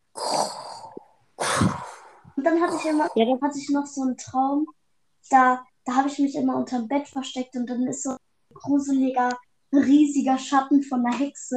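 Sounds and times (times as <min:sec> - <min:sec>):
voice imitating heavy rasping masked respirator breathing: 0:00.0 - 0:03.4
speech: 0:02.4 - 0:11.5.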